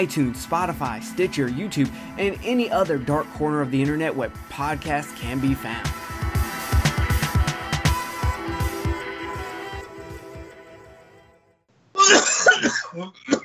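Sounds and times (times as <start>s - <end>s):
speech: 0.0s - 6.1s
rhythmic music: 0.0s - 11.0s
person coughing: 12.0s - 13.4s.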